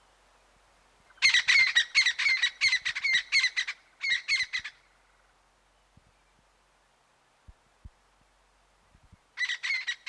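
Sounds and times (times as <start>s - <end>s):
crested francolin harsh rasping chattering calls: 1.2s - 4.8s, 9.4s - 10.0s.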